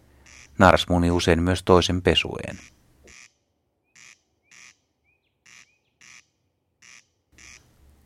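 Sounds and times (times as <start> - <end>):
corncrake dry rasping call: 0.2 - 0.6, 2.6 - 7.7
speech: 0.6 - 2.8
faint bird chirps: 2.6 - 7.6.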